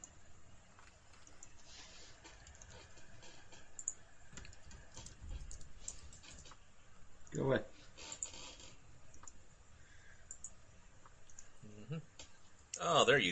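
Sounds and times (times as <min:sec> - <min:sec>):
low hiss: 0:00.0 - 0:13.3
soft rapid computer keyboard typing: 0:00.8 - 0:06.6, 0:10.3 - 0:10.6
speech: 0:07.4 - 0:07.7, 0:13.0 - 0:13.3.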